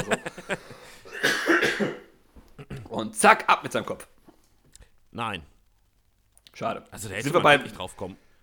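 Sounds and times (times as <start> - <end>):
person coughing: 0.6 - 2.9
speech: 3.2 - 4.2, 5.2 - 5.5, 6.6 - 8.2.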